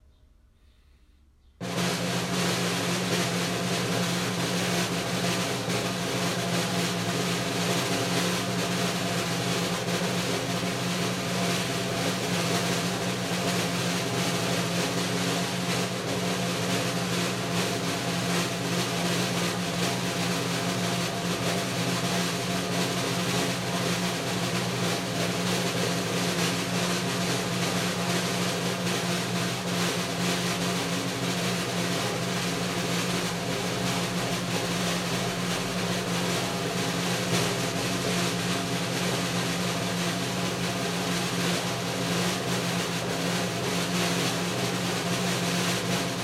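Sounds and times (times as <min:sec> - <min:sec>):
drum roll: 0:01.6 - 0:46.2.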